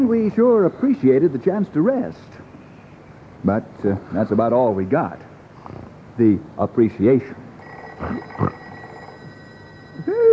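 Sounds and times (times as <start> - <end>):
speech: 0.0 - 2.5, 3.4 - 5.3, 6.2 - 7.4, 8.0 - 8.6
old-fashioned telephone bell ringing: 7.6 - 10.3.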